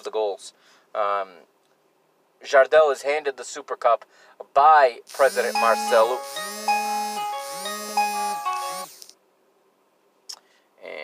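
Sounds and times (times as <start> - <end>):
speech: 0.0 - 1.6, 2.4 - 6.8
electronic alarm chime: 5.2 - 8.9.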